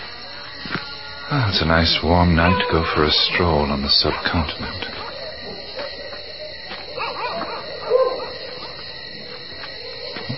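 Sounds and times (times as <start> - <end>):
night insects humming on a warm night on the subcontinent: 0.0 - 10.3
speech: 1.3 - 5.0
dogs barking and yipping on a warm night on the subcontinent: 4.0 - 10.3
dog yelping: 5.0 - 8.7.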